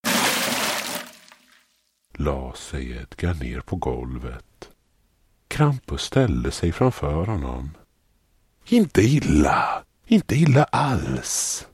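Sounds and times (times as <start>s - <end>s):
dirty brown water dumped out of a scrub bucket: 0.0s - 2.0s
speech: 2.2s - 4.7s, 5.5s - 7.8s, 8.7s - 11.7s.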